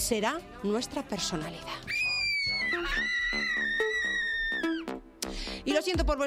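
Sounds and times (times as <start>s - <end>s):
speech: 0.1s - 2.0s, 5.8s - 6.2s
loud piercing human scream: 1.9s - 4.9s.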